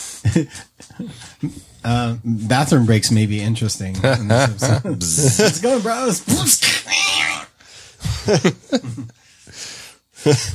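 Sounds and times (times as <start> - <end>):
harsh breathy hissing: 0.0 - 1.6, 9.2 - 10.5
laughter: 0.3 - 1.0, 3.9 - 6.2, 8.0 - 9.1
speech: 0.3 - 7.2, 8.2 - 10.5
cat yowling: 6.8 - 7.5.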